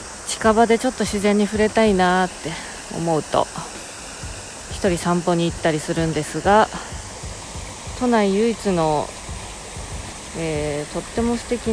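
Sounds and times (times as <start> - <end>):
river stream flowing in a valley: 0.0 - 11.7
speech: 0.4 - 3.8, 4.8 - 6.9, 8.0 - 9.2, 10.3 - 11.7.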